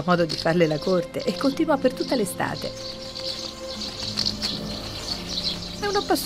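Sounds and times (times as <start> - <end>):
speech: 0.0 - 3.1, 5.8 - 6.2
swallow chirping while flying in circles: 0.0 - 6.2.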